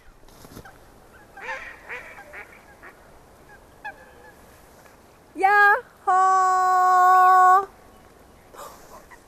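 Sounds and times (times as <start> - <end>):
faint breeze outdoors: 0.0 - 9.2
waterfowl including white swans honking on a partly frozen lake: 0.6 - 4.4.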